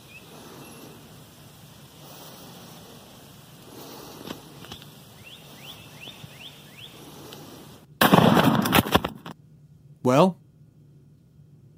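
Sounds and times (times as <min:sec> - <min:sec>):
small rising bird chirps: 0:00.0 - 0:01.0, 0:04.7 - 0:07.1
faint outdoor nature ambience: 0:00.0 - 0:11.7
very loud shotgun blast: 0:08.0 - 0:09.3
speech: 0:10.1 - 0:10.4.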